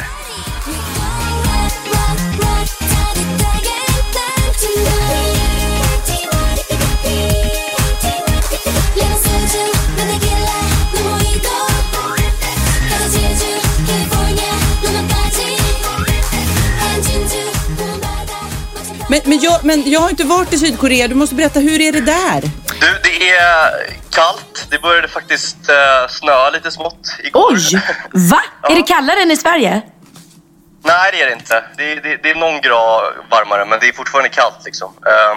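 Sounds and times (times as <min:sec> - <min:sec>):
K-pop track with punchy beat and layered synths: 0:00.0 - 0:23.1
speech: 0:19.1 - 0:30.0, 0:30.8 - 0:35.3.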